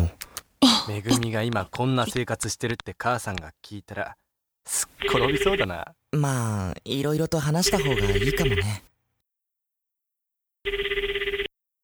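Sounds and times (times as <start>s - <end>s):
speech: 0.9s - 8.9s, 10.6s - 11.1s
telephone ringing with a warbling trill from a public payphone: 5.0s - 5.8s, 7.6s - 8.8s, 10.6s - 11.5s.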